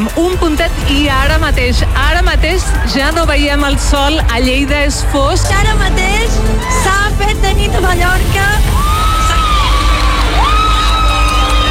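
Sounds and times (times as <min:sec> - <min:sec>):
speech: 0:00.0 - 0:08.8
large crowd cheering and shouting on a beach during a solar eclipse: 0:00.0 - 0:11.6.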